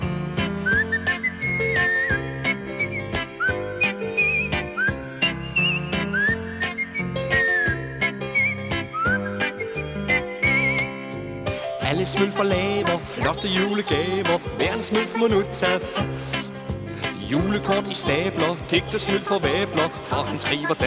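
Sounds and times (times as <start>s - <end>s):
bright high whistled Christmas tune: 0.5s - 20.8s
speech: 12.1s - 16.4s, 17.3s - 20.8s.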